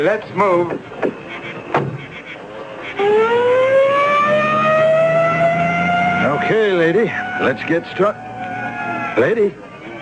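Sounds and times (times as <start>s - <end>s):
speech: 0.0s - 1.9s, 3.0s - 3.6s, 6.5s - 8.3s, 9.2s - 9.6s
brief thump like a closing door: 1.7s - 2.0s
loud ambulance siren wailing: 2.9s - 10.0s.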